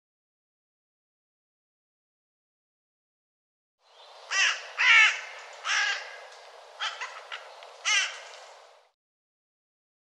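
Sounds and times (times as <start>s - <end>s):
bird cawing: 4.3s - 8.7s.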